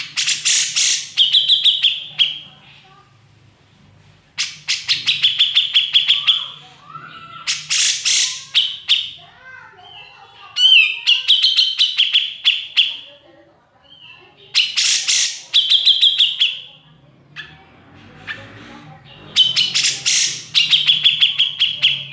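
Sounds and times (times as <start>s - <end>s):
grey-cheeked bulbul singing: 0.0s - 2.5s, 4.4s - 13.2s, 13.8s - 16.8s, 19.1s - 22.1s.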